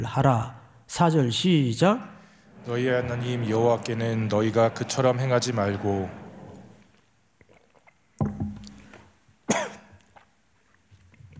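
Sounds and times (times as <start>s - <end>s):
speech: 0.0s - 6.2s
person coughing after choking on water: 9.5s - 10.0s.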